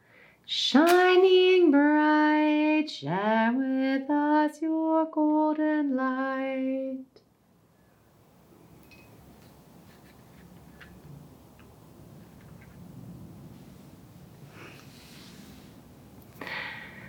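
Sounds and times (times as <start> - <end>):
speech: 0.5 - 1.9, 2.9 - 7.1
soft breathy blowing exhales of a wind breathing exercise: 14.4 - 17.0.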